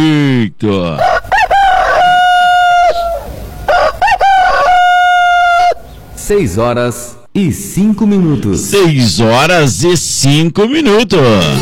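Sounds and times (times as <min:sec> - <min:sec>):
speech: 0:00.4 - 0:01.2, 0:06.3 - 0:11.5
rooster crowing: 0:01.0 - 0:05.9.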